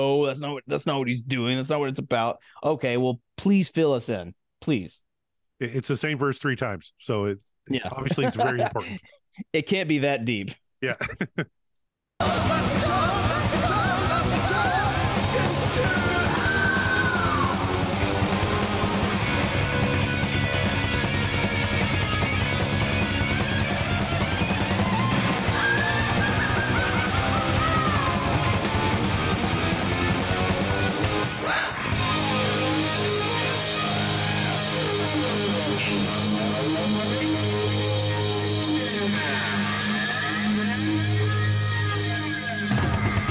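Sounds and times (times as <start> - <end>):
speech: 0.0 - 5.0, 5.6 - 11.6, 12.2 - 13.0
laughter: 7.7 - 9.2, 10.8 - 11.5
distorted guitars in a rock song ending: 12.2 - 43.2.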